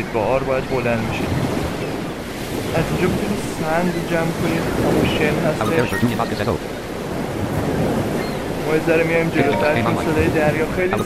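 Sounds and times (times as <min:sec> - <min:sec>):
speech: 0:00.0 - 0:01.4, 0:02.7 - 0:06.7, 0:08.7 - 0:11.0
sea waves in a video game: 0:00.4 - 0:11.0.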